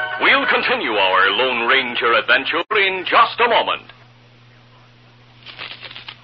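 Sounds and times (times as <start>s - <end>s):
faint steady hum: 0.1s - 6.2s
speech: 2.0s - 3.9s
handful of coins jingling and clinking: 5.5s - 6.2s.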